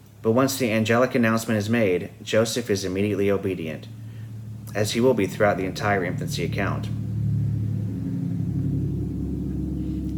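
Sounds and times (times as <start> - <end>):
speech: 0.2 - 4.0, 4.7 - 7.0
heavy truck engine rumble outside: 2.9 - 10.1.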